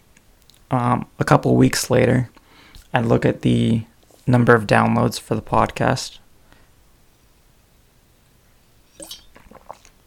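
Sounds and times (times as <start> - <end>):
speech: 0.7 - 6.2
person drinking water close to the microphone: 8.9 - 10.0
soft wet swallowing and gulping: 8.9 - 10.0.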